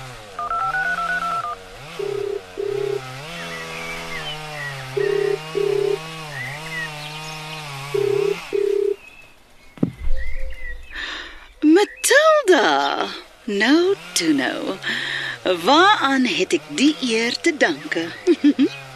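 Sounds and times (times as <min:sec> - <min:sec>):
chainsaw sawing off tree branches: 0:00.0 - 0:09.0, 0:12.7 - 0:18.9
low rumble: 0:09.9 - 0:11.6
speech: 0:12.6 - 0:18.7
laughter: 0:18.1 - 0:18.8.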